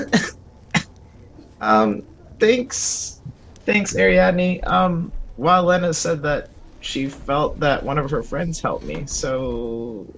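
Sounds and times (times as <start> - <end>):
person coughing: 0.0 - 0.9
speech: 1.6 - 10.1.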